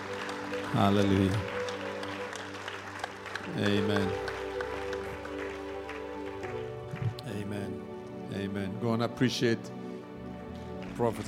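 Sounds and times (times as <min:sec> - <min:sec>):
crowd clapping in praise of God: 0:00.0 - 0:08.2, 0:10.2 - 0:11.2
speech: 0:00.7 - 0:01.6, 0:03.5 - 0:04.3, 0:08.4 - 0:09.8, 0:11.0 - 0:11.2.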